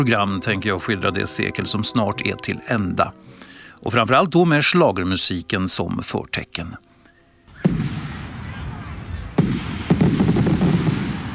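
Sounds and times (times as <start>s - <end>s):
speech: 0.0s - 6.9s
booming fireworks: 7.5s - 11.3s
cannon salute blasts: 7.5s - 11.3s
rumbling crowd murmur: 7.6s - 9.8s.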